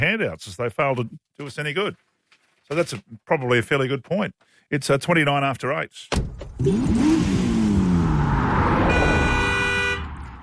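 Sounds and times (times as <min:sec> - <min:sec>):
speech: 0:00.0 - 0:02.1, 0:02.7 - 0:07.4
car engine revving: 0:06.5 - 0:10.4
horn blast: 0:08.6 - 0:10.4.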